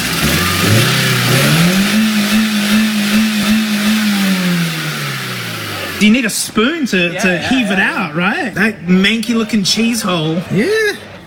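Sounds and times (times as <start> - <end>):
car engine with cheese in its engine block revving: 0.0 - 6.6
speech: 6.0 - 11.1
laughter: 6.8 - 11.2.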